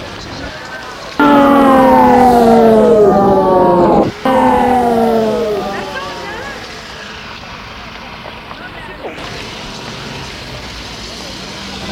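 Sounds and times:
ambulance siren wailing outside an old building in the Marais: 0:01.2 - 0:06.7.

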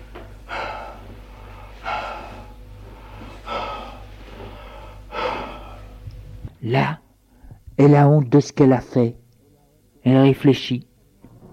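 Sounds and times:
heavy breathless panting: 0:00.0 - 0:06.0
low constant hum: 0:00.0 - 0:11.5
speech: 0:06.6 - 0:07.0, 0:07.8 - 0:09.2, 0:10.0 - 0:10.9.

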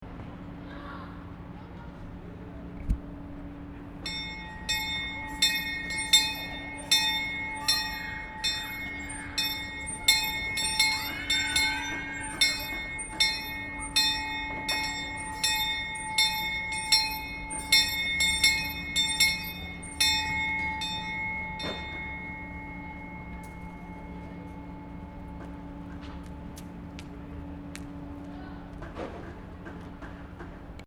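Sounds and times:
bell ringing: 0:04.0 - 0:27.7.

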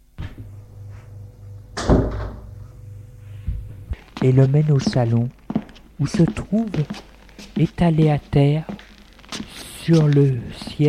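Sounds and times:
door swinging and shutting with a solid thud: 0:01.7 - 0:02.6
speech: 0:04.2 - 0:05.4, 0:06.0 - 0:08.8, 0:09.8 - 0:10.8.

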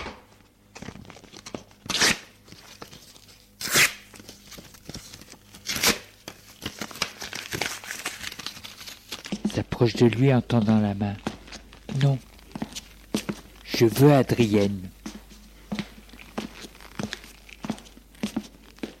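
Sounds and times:
paper rustling and crinkling: 0:00.7 - 0:01.8, 0:02.4 - 0:18.9
paper envelope torn open by hand: 0:01.2 - 0:09.4
speech: 0:09.8 - 0:11.3, 0:12.0 - 0:12.3, 0:13.8 - 0:15.0.

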